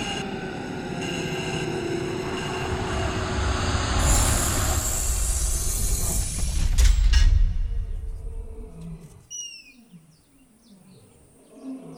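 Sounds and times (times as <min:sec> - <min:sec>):
heavy roaring rush of noise from a herd of elephants: 0:00.2 - 0:09.0.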